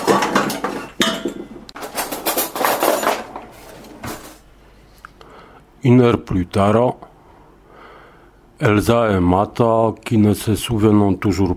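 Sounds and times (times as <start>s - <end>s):
dishes and cutlery clinking while making breakfast: 0.0s - 4.4s
speech: 5.8s - 7.1s, 8.6s - 11.5s.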